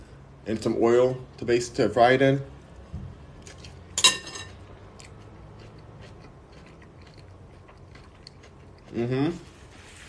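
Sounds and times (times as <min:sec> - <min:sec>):
speech: 0:00.4 - 0:02.5, 0:09.0 - 0:09.5
cutlery and dishes clinking during a meal: 0:04.0 - 0:04.6.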